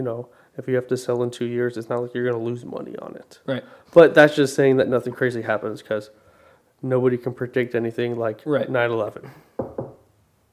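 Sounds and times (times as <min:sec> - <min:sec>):
speech: 0:00.0 - 0:06.2, 0:06.8 - 0:09.5
knuckles knocking on wood: 0:09.6 - 0:10.0.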